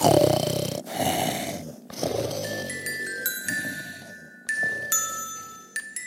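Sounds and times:
sleeping cat snoring heavily: 0.0 - 5.2
faint jingling tones: 2.1 - 6.0.

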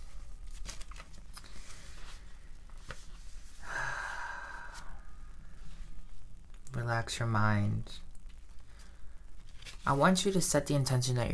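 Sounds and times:
faint steady noise: 0.0 - 11.3
slow deep breath during a guided relaxation exercise: 3.5 - 6.0, 8.6 - 9.4
speech: 6.9 - 8.1, 9.8 - 11.3.

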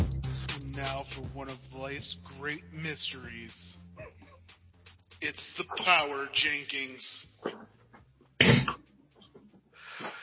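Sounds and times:
speech: 0.8 - 3.8, 5.2 - 7.6
person sneezing: 8.4 - 8.8
breathy exhale: 9.8 - 10.2.

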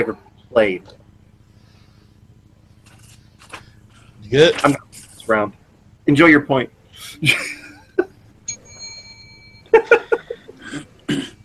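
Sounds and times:
speech: 0.0 - 1.0, 4.3 - 7.6
laughter: 7.0 - 8.2, 9.7 - 11.1
single bell dinging: 8.4 - 10.6
person coughing: 10.6 - 11.4
throaty vocal sounds: 10.6 - 11.4.

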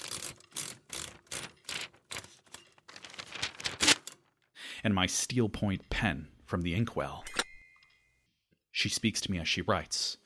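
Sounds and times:
paper pulled from a typewriter: 1.1 - 4.3
speech: 4.8 - 7.4, 8.8 - 10.2.

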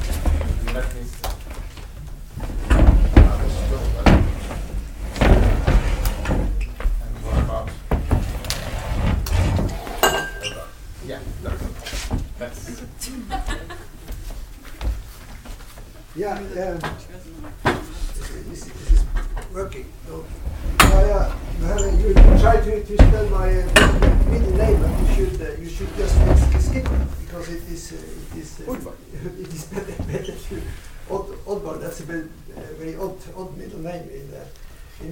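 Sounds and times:
chairs being shifted aside in a room: 0.0 - 12.4, 16.9 - 28.5
laughter: 13.0 - 14.2, 29.1 - 30.7.

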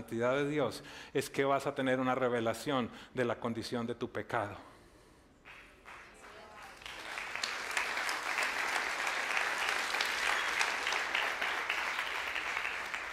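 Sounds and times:
speech: 0.0 - 4.7
scattered moderate audience applause: 5.5 - 13.1.

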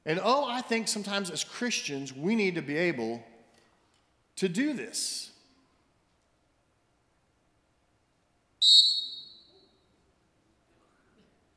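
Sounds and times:
speech: 0.0 - 3.3, 4.4 - 5.3, 8.6 - 8.8
shrill blast from a pea-less referee whistle echoing in a room: 8.6 - 9.9.

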